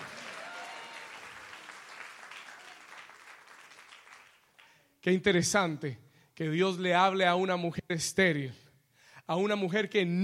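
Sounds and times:
crowd applause: 0.0s - 4.8s
speech: 5.0s - 8.6s, 9.3s - 10.2s.

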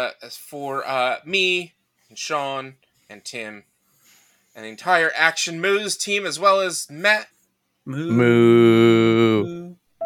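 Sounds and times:
speech: 0.0s - 3.7s, 4.6s - 10.0s
person imitating a cow moo: 7.9s - 9.8s.

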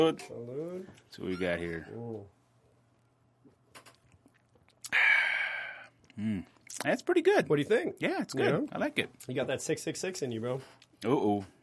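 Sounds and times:
speech: 0.0s - 2.4s, 6.2s - 11.6s
person sipping and swallowing beer: 3.8s - 6.8s
loud breathy exhale: 4.9s - 5.9s.

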